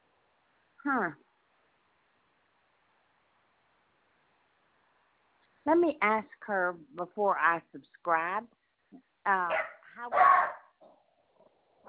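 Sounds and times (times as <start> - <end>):
speech: 0.8 - 1.2, 5.7 - 10.6
small dog barking: 9.5 - 10.8.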